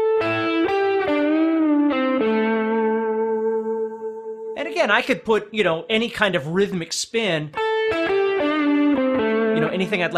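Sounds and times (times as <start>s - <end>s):
electric blues guitar lick with effects, string bend and pull-off: 0.0s - 4.8s, 7.5s - 10.1s
speech: 4.8s - 8.0s, 9.7s - 10.1s.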